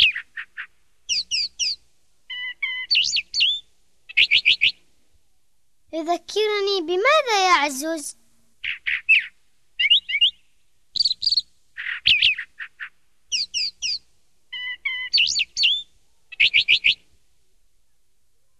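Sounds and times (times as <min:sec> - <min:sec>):
sparrow chirping: 0:00.0 - 0:04.8, 0:08.6 - 0:17.1
speech: 0:06.0 - 0:08.2.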